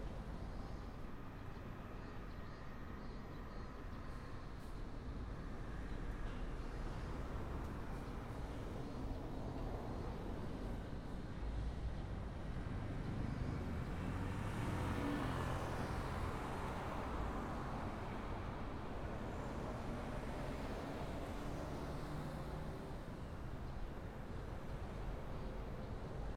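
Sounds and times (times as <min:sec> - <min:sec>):
traffic: 0:00.0 - 0:26.3.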